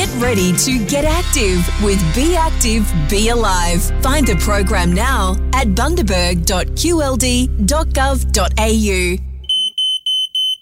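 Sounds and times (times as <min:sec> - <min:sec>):
speech: 0:00.2 - 0:09.3
smoke alarm beeping: 0:09.4 - 0:10.6.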